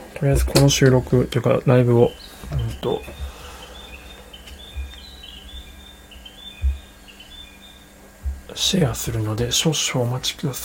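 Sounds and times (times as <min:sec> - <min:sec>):
faint birds chirping outdoors: 0:00.0 - 0:10.6
speech: 0:00.2 - 0:03.3, 0:08.6 - 0:10.6
low soft thumps: 0:02.3 - 0:08.6.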